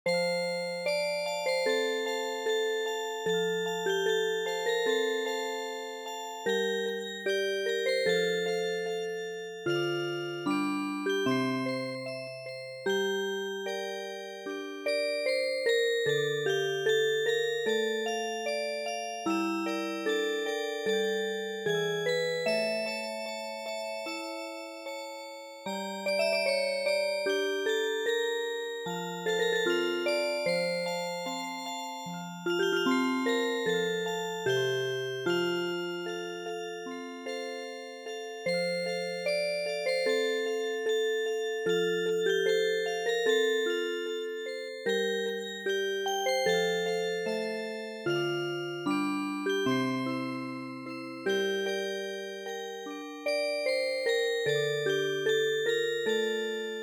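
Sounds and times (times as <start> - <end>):
music box melody: 0.1 - 56.8.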